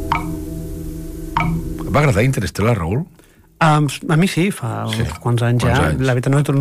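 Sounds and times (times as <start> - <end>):
sharp bright clock ticks: 0.1 - 0.4, 1.4 - 1.9
speech: 2.0 - 6.6.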